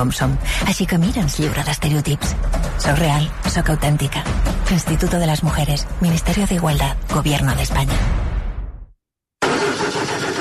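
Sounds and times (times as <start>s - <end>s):
speech: 0.0s - 8.2s
poorly maintained car engine starting: 9.4s - 10.3s.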